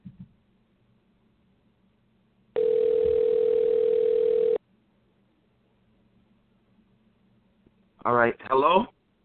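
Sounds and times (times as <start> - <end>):
telephone dial tone while placing a call: 2.6 - 4.6
speech: 8.1 - 8.9.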